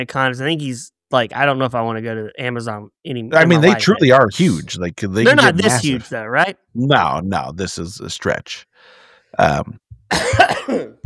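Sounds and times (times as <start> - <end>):
speech: 0.0 - 11.0
person coughing in harsh throaty bursts: 10.1 - 11.0.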